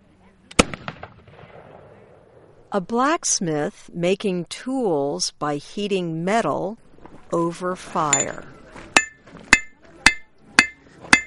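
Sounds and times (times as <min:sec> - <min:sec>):
period gun fired at a historical demonstration during an outdoor celebration: 0:00.5 - 0:02.1
speech: 0:02.7 - 0:08.6.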